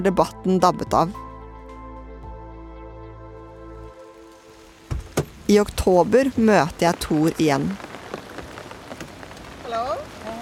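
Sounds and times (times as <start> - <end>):
speech: 0.0 - 1.2, 5.5 - 7.8
rain pattering on a surface outdoors: 3.4 - 10.3.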